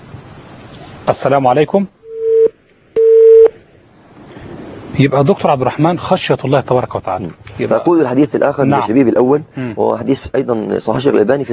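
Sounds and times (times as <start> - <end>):
quiet hiss on a telephone line: 0.0 - 11.5
speech: 1.1 - 2.0, 5.0 - 11.5
telephone line tone as a caller's call connects: 2.1 - 3.5.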